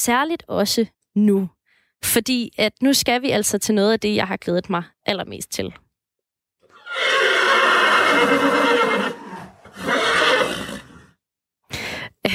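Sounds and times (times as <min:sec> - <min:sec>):
speech: 0:00.0 - 0:05.8
horse neighing in a long wavering whinny: 0:06.7 - 0:11.2.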